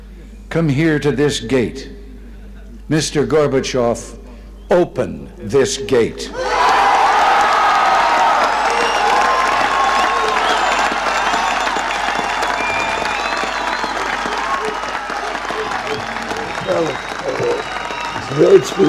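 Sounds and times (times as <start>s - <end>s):
speech: 0.5s - 2.0s, 2.9s - 6.5s, 18.6s - 18.8s
large crowd applauding after a political speech: 6.4s - 18.8s.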